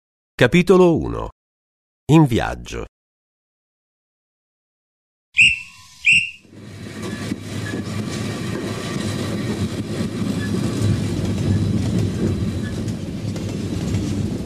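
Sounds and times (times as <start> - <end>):
speech: 0.4 - 1.4, 2.1 - 2.9
train whistle blasts: 5.4 - 6.5
train starting to move rumbling and rattling: 5.8 - 14.4.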